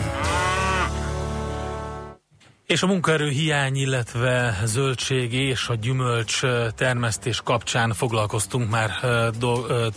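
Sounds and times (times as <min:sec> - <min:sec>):
cow mooing: 0:00.0 - 0:01.0
speech: 0:02.7 - 0:09.9.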